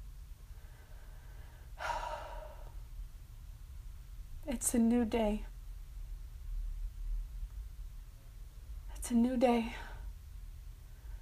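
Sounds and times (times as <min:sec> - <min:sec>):
low steady hum: 0:00.0 - 0:11.1
deep breath: 0:00.4 - 0:02.8
speech: 0:04.5 - 0:05.5, 0:09.1 - 0:09.9.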